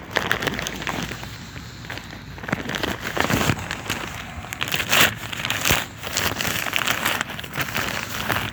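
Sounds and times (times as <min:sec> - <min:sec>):
paper laid down onto a plastic tarp, rustling and crinkling: 0:00.0 - 0:08.5.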